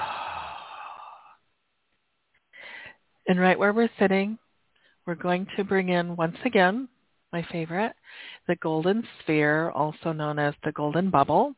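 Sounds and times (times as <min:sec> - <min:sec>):
long breathy exhale releasing a held deep breath during guided meditation: 0:00.0 - 0:01.4
speech: 0:03.3 - 0:04.4, 0:05.0 - 0:11.5.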